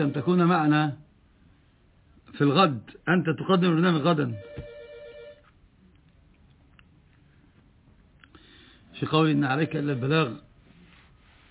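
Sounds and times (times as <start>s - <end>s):
speech: 0.0s - 1.0s, 2.4s - 4.7s, 9.0s - 10.5s
faint noise: 0.0s - 11.4s
telephone ringing with bright electronic trilling tones: 4.3s - 5.5s, 9.6s - 10.4s.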